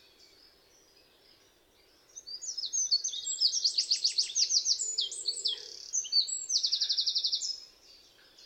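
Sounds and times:
Eurasian wren Troglodytes troglodytes singing trills: 0:02.1 - 0:07.7.

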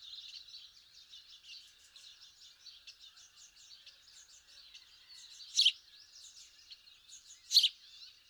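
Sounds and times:
many house sparrows Passer domesticus soft twittering: 0:00.0 - 0:08.2
house sparrow louder sharper chirps: 0:07.4 - 0:07.7.

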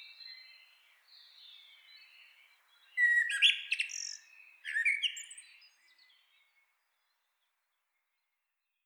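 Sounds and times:
common blackbird Turdus merula singing: 0:03.0 - 0:05.4.

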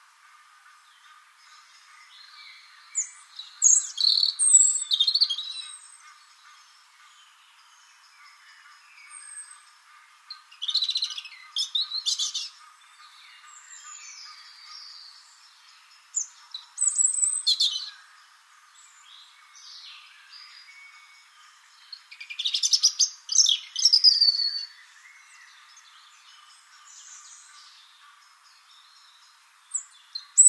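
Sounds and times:
European robin singing: 0:02.1 - 0:06.1, 0:10.3 - 0:18.2, 0:18.8 - 0:27.9, 0:28.6 - 0:30.4.

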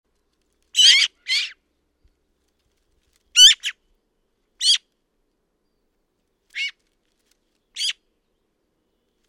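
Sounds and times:
Eurasian magpie Pica pica harsh chattering calls: 0:00.8 - 0:01.6, 0:03.4 - 0:03.8, 0:04.6 - 0:04.8, 0:06.6 - 0:06.8, 0:07.8 - 0:08.0.

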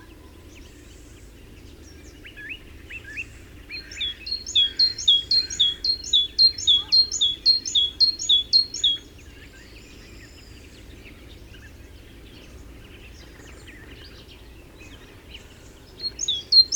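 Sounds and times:
great tit Parus major song of bright two-note phrases: 0:03.8 - 0:09.0, 0:15.9 - 0:16.7.

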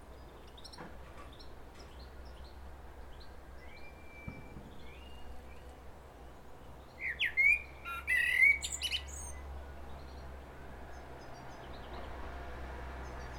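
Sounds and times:
common blackbird Turdus merula singing: 0:00.1 - 0:05.6, 0:06.8 - 0:09.4
faint level whistle: 0:03.7 - 0:05.2.

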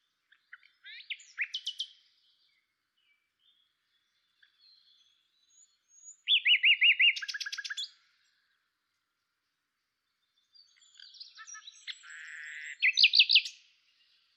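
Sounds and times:
common nightingale singing: 0:00.0 - 0:08.7, 0:10.0 - 0:14.3.

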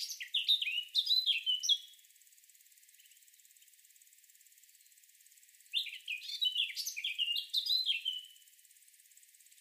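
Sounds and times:
Eurasian blackcap Sylvia atricapilla warbling: 0:00.0 - 0:01.9, 0:05.7 - 0:08.3
faint steady hiss: 0:00.0 - 0:09.5.

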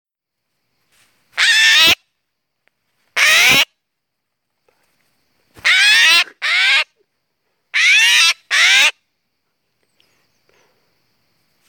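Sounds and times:
Eurasian jay Garrulus glandarius calling with loud raw tearing screeches: 0:01.4 - 0:02.0, 0:03.2 - 0:03.7, 0:05.6 - 0:06.9, 0:07.8 - 0:09.0.

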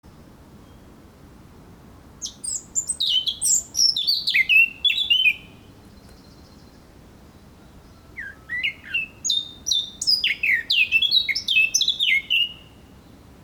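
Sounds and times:
Eurasian blackcap Sylvia atricapilla singing: 0:02.2 - 0:06.7, 0:07.9 - 0:12.8.

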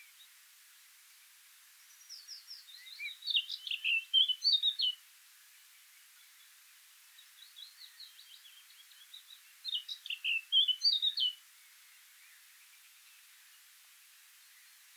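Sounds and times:
faint hiss: 0:00.0 - 0:14.9
Eurasian blackcap Sylvia atricapilla singing: 0:02.1 - 0:05.0, 0:09.6 - 0:11.4.

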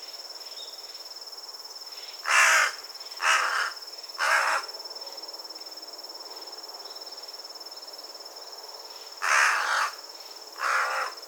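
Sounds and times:
carrion crow cawing: 0:02.3 - 0:04.7, 0:09.2 - 0:10.0, 0:10.6 - 0:11.2.

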